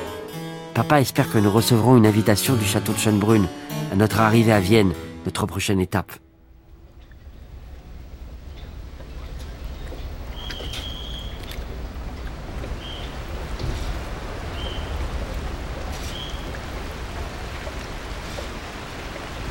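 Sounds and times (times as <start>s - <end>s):
speech: 0.9s - 6.3s
low boat engine rumble: 6.4s - 19.4s
water wash of a boat crossing a river: 6.7s - 19.4s
faint high chirps: 9.7s - 11.7s, 16.0s - 16.5s.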